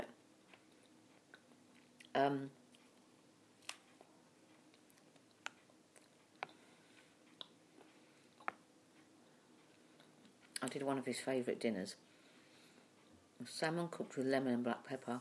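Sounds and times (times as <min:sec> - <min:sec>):
person chewing food: 0:00.4 - 0:02.1, 0:02.7 - 0:10.6
speech: 0:02.2 - 0:02.6, 0:10.7 - 0:12.1, 0:13.4 - 0:15.1.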